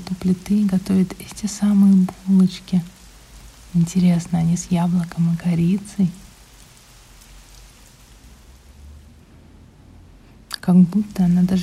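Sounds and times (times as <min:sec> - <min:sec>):
soft low rumbling: 0:00.0 - 0:11.6
steady rain falling outside: 0:00.0 - 0:11.6
speech: 0:00.1 - 0:03.0, 0:03.7 - 0:06.2, 0:10.6 - 0:11.6.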